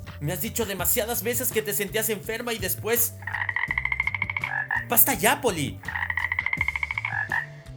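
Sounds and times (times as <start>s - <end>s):
speech: 0.2s - 3.6s, 4.9s - 6.0s
person imitating toad croaks: 3.0s - 7.6s.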